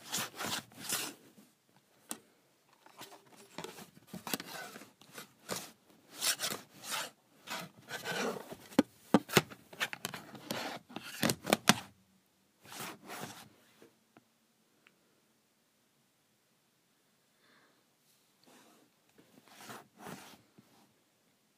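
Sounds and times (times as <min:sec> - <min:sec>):
calculator cover sliding on and off with scraping strokes: 0:00.0 - 0:01.2, 0:02.8 - 0:11.9, 0:12.6 - 0:13.5, 0:19.4 - 0:20.4.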